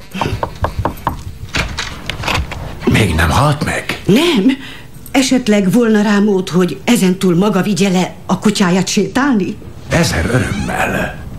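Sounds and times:
knocking on a door: 0:00.2 - 0:01.3
speech: 0:03.0 - 0:11.2.

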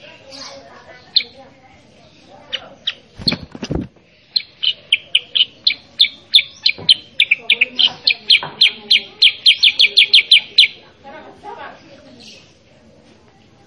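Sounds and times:
sooty-headed bulbul singing: 0:02.4 - 0:03.6, 0:04.2 - 0:10.8.

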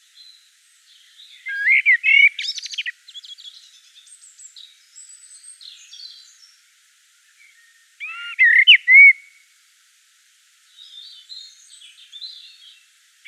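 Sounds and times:
Common blackbird song in Provence: 0:00.1 - 0:06.6, 0:07.2 - 0:09.4, 0:10.8 - 0:13.2.

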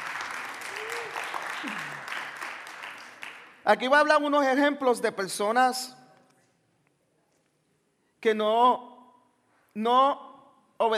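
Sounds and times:
church congregation applauding during a morning service: 0:00.0 - 0:04.0
speech: 0:03.7 - 0:06.0, 0:08.2 - 0:08.9, 0:09.8 - 0:10.9.

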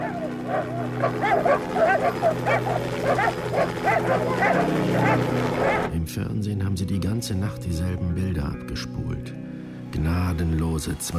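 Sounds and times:
several dogs barking at an outdoor property: 0:00.0 - 0:05.9
constant low mechanical drone: 0:00.0 - 0:06.0
speech: 0:00.6 - 0:11.1.

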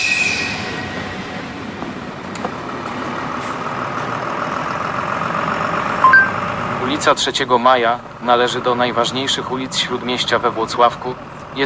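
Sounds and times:
train wheel squeal at a railway station: 0:00.0 - 0:01.5
train rolling at a railway station: 0:00.0 - 0:11.6
speech: 0:07.0 - 0:11.6.

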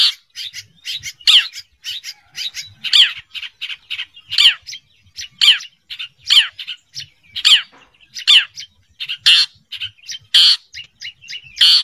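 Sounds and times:
long-tailed shrike song of harsh rasping bursts and squeals: 0:00.0 - 0:11.8.

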